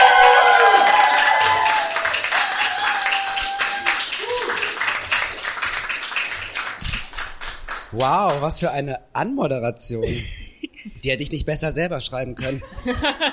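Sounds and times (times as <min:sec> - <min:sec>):
audience cheering: 0:00.0 - 0:05.7
large studio audience applauding: 0:00.0 - 0:08.5
speech: 0:08.0 - 0:10.4, 0:11.0 - 0:13.3
laughter: 0:12.4 - 0:13.3.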